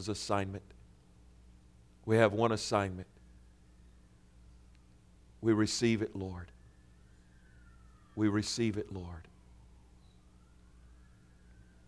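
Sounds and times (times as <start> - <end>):
speech: 0.0 - 0.8, 2.0 - 3.2, 5.4 - 6.6, 8.2 - 9.3
emergency vehicle siren passing: 5.5 - 11.8.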